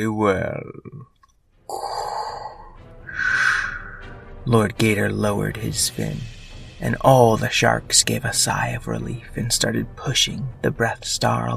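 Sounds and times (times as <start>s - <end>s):
speech: 0.0s - 2.0s, 4.4s - 11.5s
person gasping for breath: 1.7s - 4.2s.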